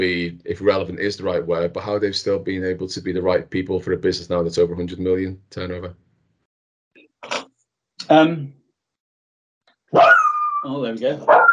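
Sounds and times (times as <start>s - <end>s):
speech: 0.0s - 6.0s, 8.1s - 8.6s, 9.9s - 11.5s
dog barking and yowling: 9.9s - 11.5s.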